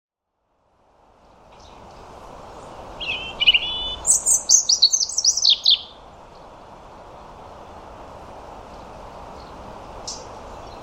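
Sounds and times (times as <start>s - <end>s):
European robin song: 1.4s - 7.4s, 8.6s - 10.8s.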